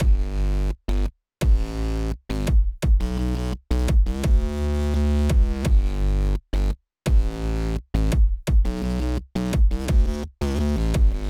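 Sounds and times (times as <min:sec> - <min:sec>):
Neutron synth bass: 0:00.0 - 0:11.2.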